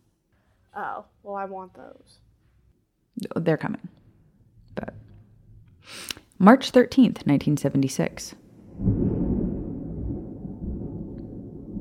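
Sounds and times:
speech: 0.8 - 2.3, 3.2 - 3.9, 6.4 - 9.0
thunder rumbling: 4.3 - 5.9, 8.1 - 11.8.

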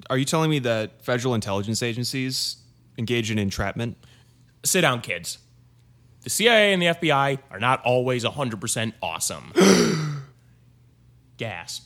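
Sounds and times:
speech: 0.0 - 5.4, 6.2 - 10.1, 11.4 - 11.8
breathy voiced mock gasp of surprise: 9.6 - 10.4.

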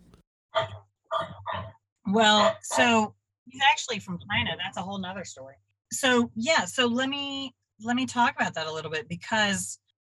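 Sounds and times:
dog from China barking in short sharp yaps: 0.5 - 3.0
speech: 2.1 - 9.8.

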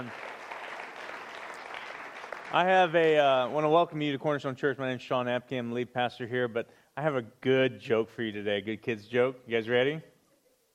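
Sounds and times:
large church audience applauding: 0.0 - 3.8
speech: 2.5 - 10.1.

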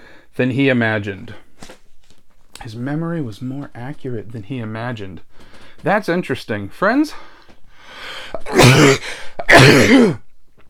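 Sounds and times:
speech: 0.4 - 1.4, 2.6 - 7.3, 7.9 - 10.2
person sneezing: 8.4 - 10.2.

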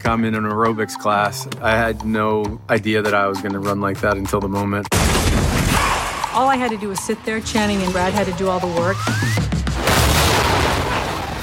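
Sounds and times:
speech: 0.0 - 5.2, 6.4 - 9.5
explosion effect pops on a film set: 4.9 - 6.1, 9.8 - 11.4.

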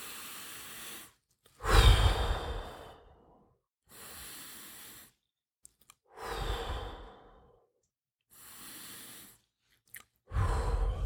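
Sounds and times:
deep breaths with sighing exhales: 0.0 - 5.3, 6.1 - 7.7, 8.3 - 9.6, 10.3 - 11.0.

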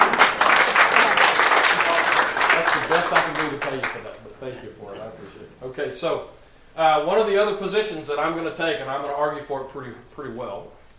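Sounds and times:
audience applause: 0.0 - 4.2
speech: 3.1 - 10.8.

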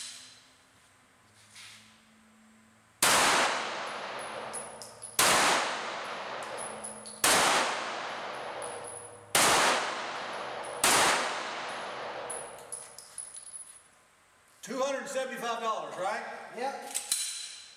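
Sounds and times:
full-size Stoeger STR-9 pistol gunshots with ringing metallic decay: 3.0 - 12.6
speech: 14.6 - 17.0.

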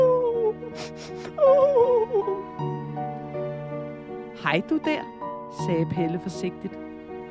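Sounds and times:
voice imitating crying with wavering whimpering sobs and wail: 0.0 - 2.6
quick sniffles: 0.8 - 1.4
speech: 0.8 - 2.2, 4.5 - 6.8.

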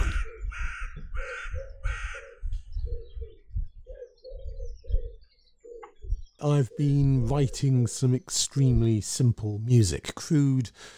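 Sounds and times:
harsh raspy caws: 0.0 - 2.4
lower rounded bird calls outdoors: 0.0 - 9.0
speech: 6.4 - 10.9.

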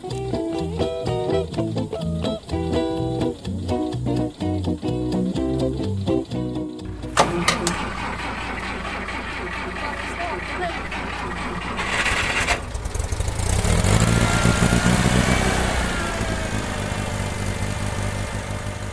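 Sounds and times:
tractor engine running and revving: 0.0 - 18.9
faint voices: 9.3 - 11.7.

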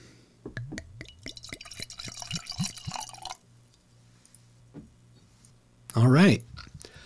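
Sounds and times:
sake glugging from a bottle into a glass: 1.0 - 3.4
speech: 6.0 - 6.5.

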